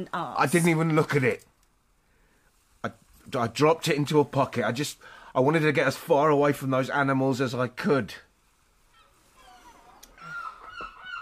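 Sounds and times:
speech: 0.0s - 1.5s, 2.8s - 8.3s
gulls squawking: 9.4s - 11.1s.

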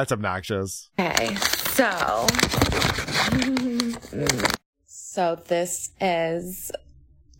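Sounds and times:
speech: 0.0s - 4.6s, 5.2s - 6.8s
paper crinkling and rustling: 1.0s - 4.6s
person humming: 3.4s - 4.6s.

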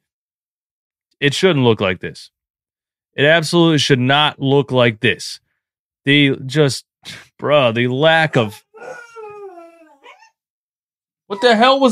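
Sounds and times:
speech: 1.2s - 2.4s, 3.2s - 5.4s, 6.0s - 9.0s, 11.3s - 11.9s
dog giving a drawn-out falling whine-like cry: 8.2s - 10.4s
dog giving a short sharp bark: 8.5s - 10.3s.

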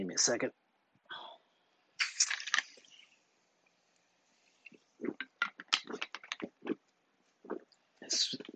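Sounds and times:
speech: 0.0s - 0.6s
sipping fizzy sparkling water: 2.0s - 8.5s.

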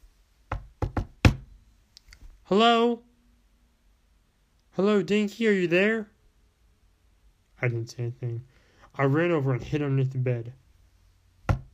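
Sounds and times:
knocking on a door: 0.5s - 1.5s, 11.5s - 11.7s
speech: 2.5s - 3.1s, 4.8s - 6.1s, 7.6s - 10.6s.

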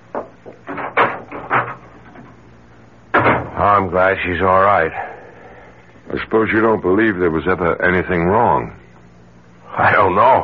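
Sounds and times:
door opening and closing as someone leaves: 0.2s - 2.4s, 3.1s - 3.6s
speech: 3.6s - 5.1s, 6.1s - 8.8s, 9.8s - 10.4s.

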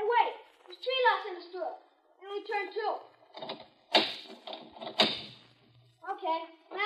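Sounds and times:
people talking: 0.0s - 3.1s, 6.0s - 6.8s
door with several locks being tried and rattled: 3.3s - 5.4s.

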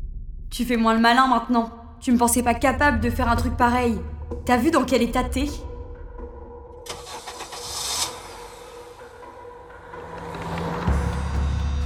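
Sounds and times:
speech: 0.5s - 5.7s
car engine starting: 6.8s - 11.0s.

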